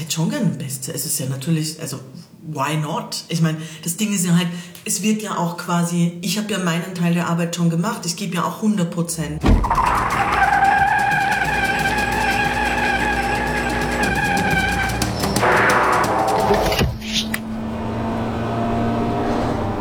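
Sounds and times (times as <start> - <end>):
speech: 0.1 - 10.5
racing car engine roaring: 9.3 - 19.8
racing car tires squealing in a skid: 9.4 - 19.8.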